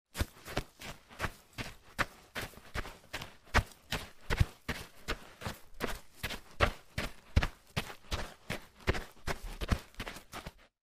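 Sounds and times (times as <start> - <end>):
running footsteps in a forest: 0.1 - 10.7.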